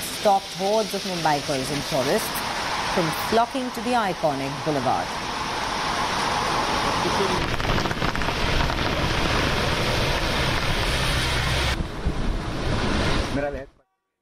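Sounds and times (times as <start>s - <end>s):
heavy monsoon rain on Marine Drive in Mumbai: 0.0s - 13.7s
windy surf-like roar: 0.0s - 13.7s
speech: 0.2s - 5.3s, 7.0s - 7.6s, 13.4s - 13.7s.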